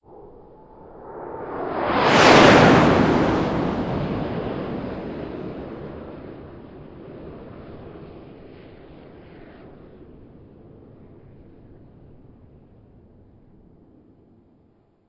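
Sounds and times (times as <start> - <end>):
jets flying over: 0.1 - 10.4.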